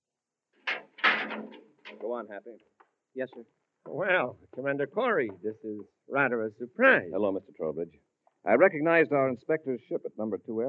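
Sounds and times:
living compartment door closing: 0:00.7 - 0:02.3
speech: 0:02.0 - 0:10.6.

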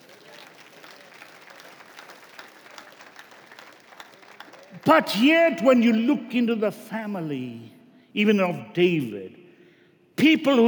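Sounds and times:
church audience clapping: 0:00.0 - 0:05.1
speech: 0:04.8 - 0:09.4, 0:10.2 - 0:10.6.

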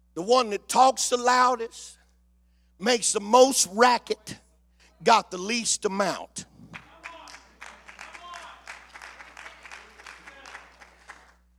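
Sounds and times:
speech: 0:00.2 - 0:02.0, 0:02.8 - 0:04.4, 0:05.0 - 0:06.5
audience clapping: 0:06.6 - 0:11.4.

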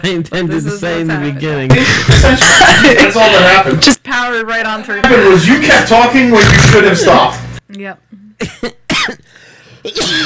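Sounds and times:
speech: 0:00.0 - 0:09.1, 0:09.8 - 0:10.2
harsh coughing: 0:01.7 - 0:03.2, 0:08.4 - 0:10.2.

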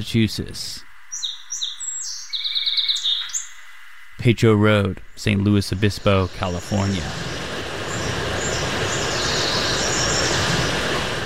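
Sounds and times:
speech: 0:00.0 - 0:00.9, 0:04.2 - 0:07.4
song sparrow song at Balton Flats in Worcester Massachusetts: 0:00.0 - 0:04.3, 0:05.0 - 0:11.2.

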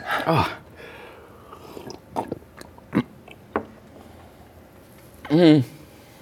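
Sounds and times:
person gulping milk: 0:01.4 - 0:03.5.

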